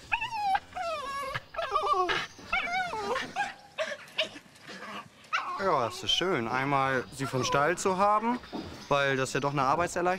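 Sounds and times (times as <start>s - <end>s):
excited farm dog whimpering and yipping: 0.0s - 6.1s
speech: 5.6s - 10.1s.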